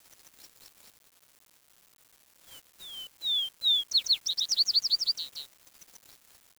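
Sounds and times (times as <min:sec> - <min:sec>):
bird song with descending whistled notes and trill of downslurred chirps: 0:02.8 - 0:05.4.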